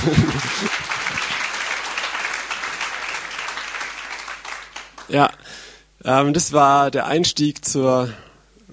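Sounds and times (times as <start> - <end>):
speech: 0.0 - 0.8, 5.1 - 8.7
laughter: 0.0 - 1.5
audience clapping: 0.0 - 5.3.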